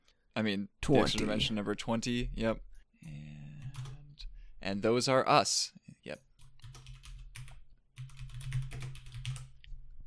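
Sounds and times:
speech: 0:00.4 - 0:03.3, 0:04.6 - 0:06.3
typing on a computer keyboard: 0:03.6 - 0:04.0, 0:06.4 - 0:09.6.

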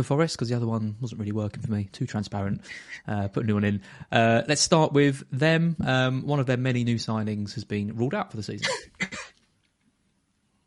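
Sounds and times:
speech: 0:00.0 - 0:09.2
single short sharp cough: 0:08.6 - 0:09.4.

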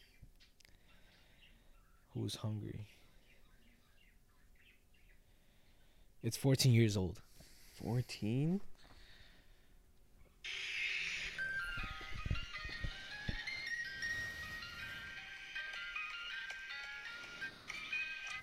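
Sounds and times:
speech: 0:02.2 - 0:03.0, 0:06.2 - 0:08.7
tinny ice cream truck jingle: 0:10.5 - 0:18.4.

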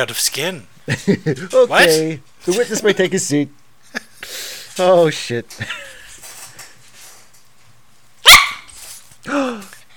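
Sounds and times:
speech: 0:00.0 - 0:05.9
dog barking: 0:08.2 - 0:08.8.

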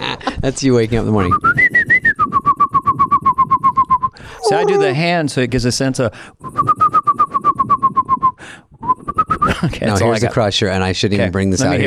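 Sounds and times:
speech: 0:00.1 - 0:01.6, 0:04.5 - 0:06.7, 0:09.6 - 0:11.8
person imitating birds with whistled chirps: 0:01.3 - 0:04.2, 0:06.5 - 0:09.6.

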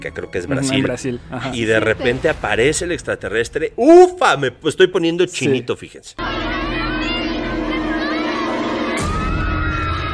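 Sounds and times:
speech: 0:00.0 - 0:06.5
crowd of people at a birthday party screaming and shouting: 0:06.2 - 0:10.1.

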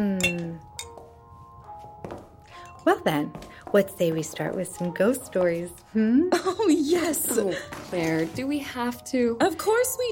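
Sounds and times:
glasses clinking in a toast: 0:00.2 - 0:01.1, 0:02.4 - 0:03.6
speech: 0:02.8 - 0:10.0.

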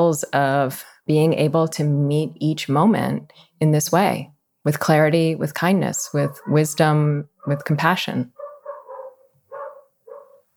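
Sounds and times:
speech: 0:00.0 - 0:08.4
dogs barking outside: 0:06.2 - 0:06.7, 0:08.4 - 0:10.5.

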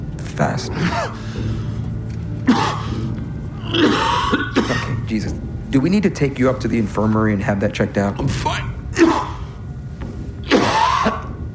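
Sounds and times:
low hum: 0:00.0 - 0:11.5
speech: 0:00.4 - 0:01.7, 0:03.7 - 0:09.3
person coughing with something caught in the throat: 0:02.5 - 0:03.0, 0:03.6 - 0:05.0, 0:10.4 - 0:11.4.

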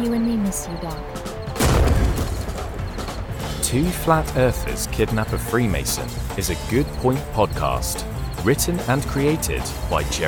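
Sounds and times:
speech: 0:00.0 - 0:01.7, 0:03.7 - 0:10.2
single loud explosion with deep rumbling boom: 0:01.6 - 0:04.5.

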